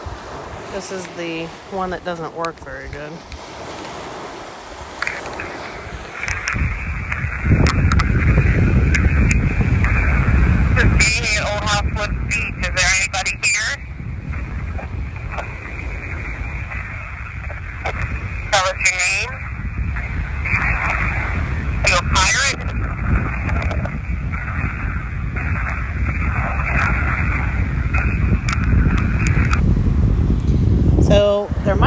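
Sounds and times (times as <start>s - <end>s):
rumble of crashing waves: 0.0s - 31.8s
steady blustery wind: 0.0s - 31.8s
speech: 0.7s - 3.4s.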